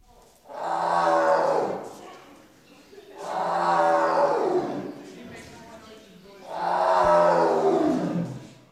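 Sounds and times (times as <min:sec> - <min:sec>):
tiger roaring at a zoo: 0:00.5 - 0:02.0, 0:03.2 - 0:05.2, 0:06.4 - 0:08.6.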